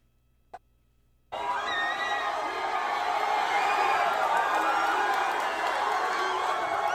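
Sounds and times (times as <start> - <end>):
huge stadium crowd cheering and chanting: 1.4 - 6.9.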